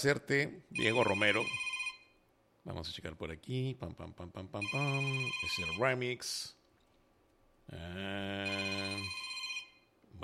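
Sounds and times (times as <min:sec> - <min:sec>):
speech: 0:00.0 - 0:01.7, 0:02.6 - 0:06.6, 0:07.7 - 0:09.2
telephone ringing with an incoming call: 0:00.8 - 0:02.2, 0:04.6 - 0:06.0, 0:08.4 - 0:09.9.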